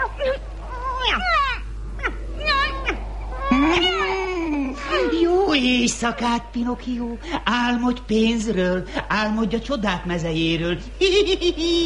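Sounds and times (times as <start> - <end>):
cat meowing: 0.0 - 4.1
faint low hum: 0.0 - 11.8
speech: 5.6 - 11.8.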